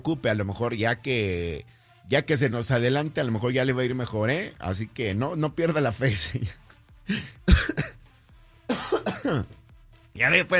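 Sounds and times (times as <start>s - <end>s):
speech: 0.0s - 7.9s, 9.2s - 9.6s, 10.2s - 10.5s
person sick with the flu coughing: 7.1s - 8.0s, 8.7s - 9.5s
throat clearing: 7.1s - 8.0s, 8.7s - 9.5s.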